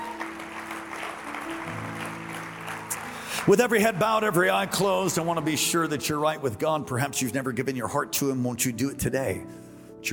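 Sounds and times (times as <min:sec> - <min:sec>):
audience applause: 0:00.0 - 0:06.3
speech: 0:03.4 - 0:10.1.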